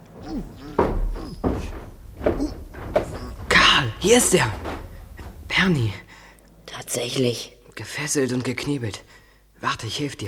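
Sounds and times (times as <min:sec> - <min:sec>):
creaking scrapes of heavy armored metal door: 0:00.0 - 0:06.1
heavy armored metal door being worked open with clanking thuds: 0:00.0 - 0:06.1
speech: 0:04.0 - 0:04.6, 0:05.6 - 0:06.0, 0:06.9 - 0:10.2.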